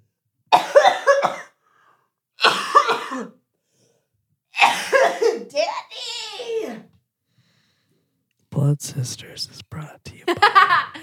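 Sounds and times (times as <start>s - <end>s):
person having a coughing fit: 0.5s - 1.6s, 2.4s - 3.4s, 4.6s - 5.5s
speech: 8.6s - 11.0s
laughter: 10.2s - 11.0s.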